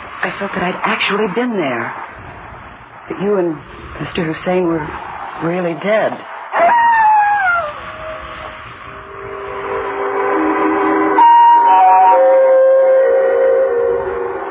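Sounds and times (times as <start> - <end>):
speech: 0.2 - 2.1, 3.1 - 6.3
distant jackal howling at night: 6.5 - 14.4.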